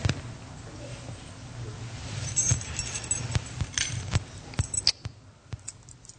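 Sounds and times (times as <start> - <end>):
rustling: 0.8 - 4.8
bunch of keys jangling while someone rummages: 2.2 - 5.0.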